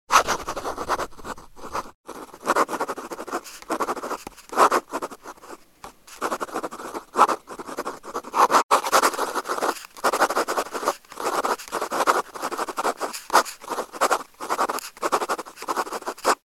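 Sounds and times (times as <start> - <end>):
pen being tested by writing: 0.1 - 16.4.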